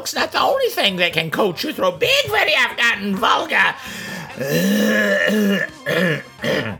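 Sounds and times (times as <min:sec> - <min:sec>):
speech: 0:00.0 - 0:06.7
person clearing throat coated after eating ice cream: 0:04.4 - 0:06.7.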